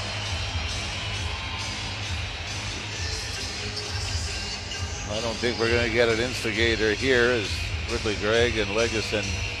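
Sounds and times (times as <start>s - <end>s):
large hockey arena crowd roaring and cheering: 0.0s - 6.8s
speech: 5.1s - 9.5s.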